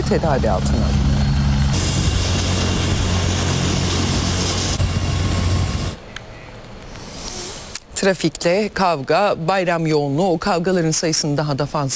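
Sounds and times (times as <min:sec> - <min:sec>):
ambulance helicopter rotor and engine roar in flight: 0:00.0 - 0:06.0
speech: 0:00.1 - 0:00.9, 0:08.0 - 0:11.9.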